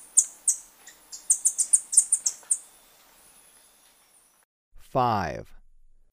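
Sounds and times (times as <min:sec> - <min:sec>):
flame-faced tanager high tsit calls in Ecuador: 0:00.0 - 0:02.7
speech: 0:04.9 - 0:05.6.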